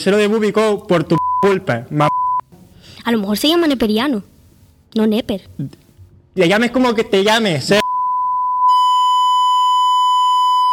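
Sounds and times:
speech: 0.0s - 2.1s, 3.0s - 4.3s, 4.9s - 5.8s, 6.4s - 7.8s
high-pitched electronic censor bleep covering swear words: 1.2s - 1.5s, 2.1s - 2.4s, 7.8s - 10.7s.

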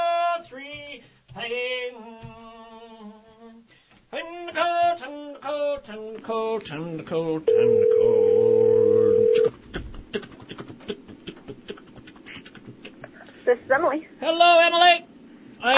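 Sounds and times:
speech: 1.0s - 2.4s, 4.1s - 9.7s, 13.5s - 15.7s
telephone dial tone while placing a call: 7.5s - 9.5s.

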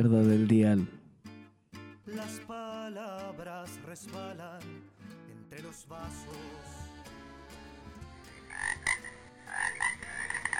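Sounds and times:
speech: 0.0s - 1.0s, 2.1s - 6.9s
toads croaking in a continuous chorus: 8.3s - 10.5s.

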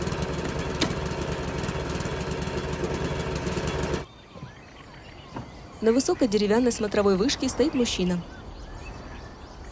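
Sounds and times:
lawn mower engine chugging: 0.0s - 4.1s
speech: 5.8s - 8.4s.

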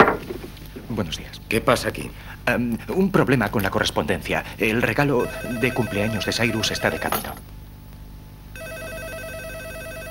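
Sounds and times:
speech: 0.9s - 7.5s
telephone ringing in an office: 5.2s - 7.4s, 8.6s - 10.1s.

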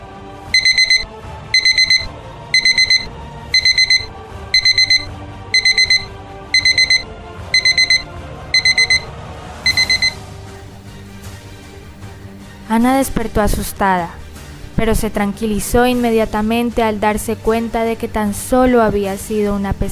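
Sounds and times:
alarm clock ringing in bursts of high-pitched beeps: 0.5s - 9.1s, 9.7s - 10.2s
speech: 12.7s - 14.2s, 14.8s - 19.9s.

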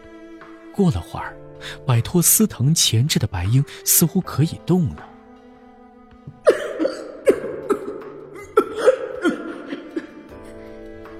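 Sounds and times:
speech: 0.8s - 5.1s
violent harsh coughing voiced for a character in a narrated story: 6.4s - 10.4s.

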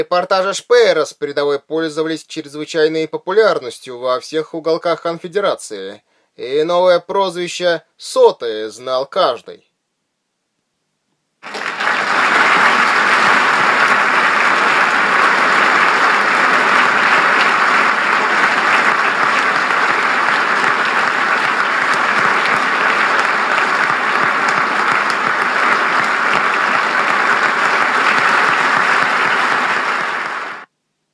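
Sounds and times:
speech: 0.0s - 9.7s
audience applauding in a hall at a standing ovation: 11.4s - 30.7s.

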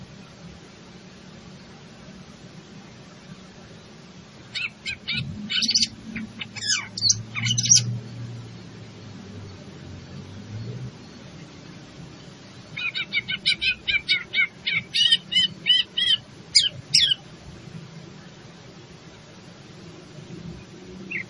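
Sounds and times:
greater green leafbird sharp high chips and twitters: 4.5s - 8.0s, 12.8s - 17.2s.

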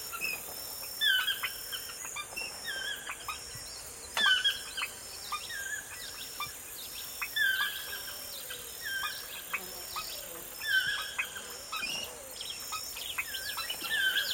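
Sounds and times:
morning birdsong in the forest: 0.0s - 14.3s
steady high insect-like hiss: 0.0s - 14.3s.

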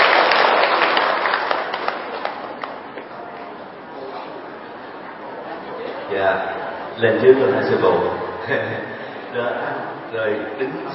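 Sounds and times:
audience applause at a Buddhist ceremony: 0.0s - 3.0s
speech: 6.2s - 10.9s.

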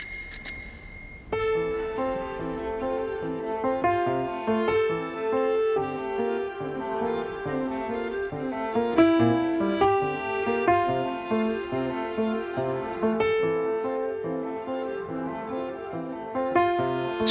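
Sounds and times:
old bicycle bell ringing: 0.0s - 1.6s
sustained tonal music: 1.3s - 17.2s.

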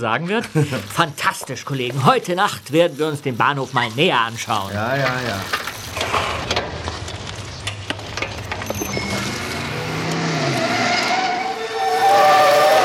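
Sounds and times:
speech: 0.0s - 5.6s
red car engine note climbing in pitch: 5.0s - 12.8s
red car tires squealing while skidding past cyclists: 8.7s - 12.8s.

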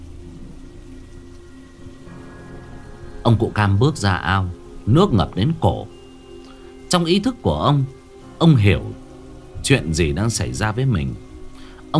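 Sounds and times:
heavy rain falling under a dark sky: 0.0s - 11.9s
speech: 3.2s - 6.0s, 6.9s - 9.0s, 9.6s - 11.3s.

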